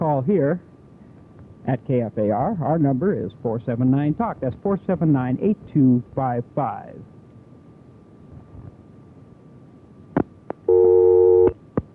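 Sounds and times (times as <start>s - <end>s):
speech: 0.1s - 0.7s, 1.6s - 7.1s
telephone busy signal on a failed call attempt: 10.7s - 11.6s.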